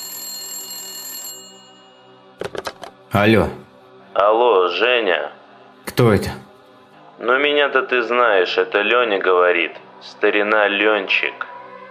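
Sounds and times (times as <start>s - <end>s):
telephone bell ringing in a house: 0.0s - 2.3s
speech: 3.1s - 3.6s, 4.2s - 6.4s, 7.2s - 11.4s.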